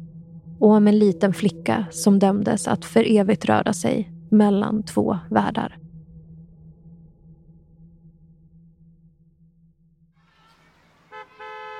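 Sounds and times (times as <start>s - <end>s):
speech: 0.6s - 5.8s
car horn honking in a parking lot: 10.3s - 11.7s.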